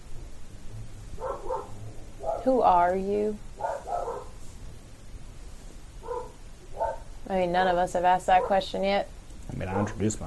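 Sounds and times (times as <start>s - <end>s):
low rumble: 0.0s - 9.5s
dog barking: 1.2s - 2.5s, 3.6s - 4.4s, 6.0s - 7.1s, 8.3s - 8.7s, 9.6s - 10.0s
dog yipping: 1.2s - 2.5s, 3.6s - 4.4s, 6.0s - 7.1s
speech: 2.4s - 3.5s, 7.3s - 10.2s.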